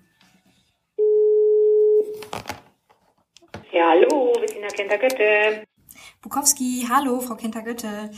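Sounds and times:
telephone ringback tone while placing a call: 1.0 - 2.1
speech: 3.8 - 5.7, 6.3 - 8.1.

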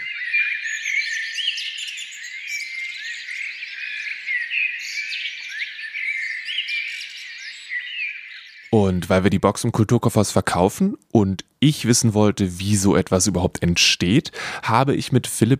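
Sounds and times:
blackbird song played back by a small motion-activated box: 0.0 - 9.0
speech: 8.7 - 15.5.

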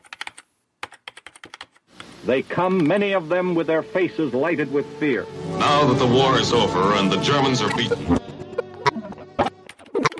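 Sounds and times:
computer keyboard typing: 0.0 - 1.9
speech: 2.2 - 8.2
laughter: 5.6 - 10.1.

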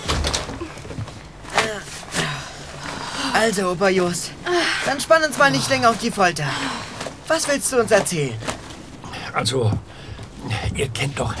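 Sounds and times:
door latching thud: 0.0 - 1.1
door creaking and swinging shut: 0.0 - 1.6
speech: 3.4 - 8.5, 9.3 - 11.3.

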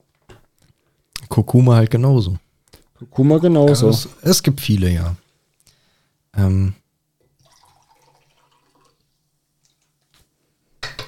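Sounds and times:
speech: 1.4 - 2.4, 3.0 - 5.2, 6.4 - 6.8
water trickling into a glass: 7.3 - 10.1.

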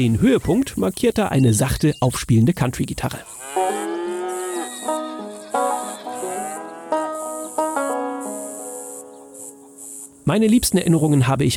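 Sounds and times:
speech: 0.0 - 3.4, 10.3 - 11.5
crickets chirring in a video game countryside: 3.2 - 11.2
cows mooing in a video game countryside: 3.3 - 8.0.

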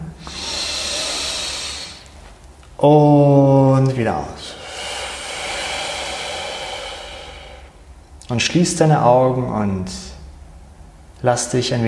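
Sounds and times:
long deep inhalation through the nose: 0.1 - 2.2, 4.5 - 7.9
speech: 2.8 - 4.6, 8.3 - 10.1, 11.2 - 11.8.

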